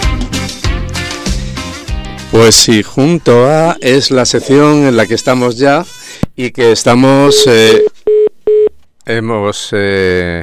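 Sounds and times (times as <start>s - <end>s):
speech: 2.4s - 7.9s, 9.1s - 10.4s
telephone line beeps: 7.2s - 8.8s.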